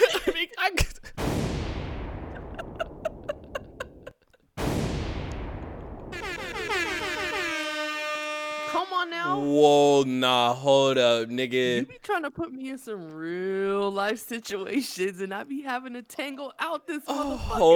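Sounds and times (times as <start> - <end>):
laughter: 0.0 - 0.6, 2.3 - 4.4
sharp booming hits: 1.2 - 3.8, 4.6 - 7.7
loud air horn blasts: 6.1 - 9.3
speech: 9.5 - 17.7.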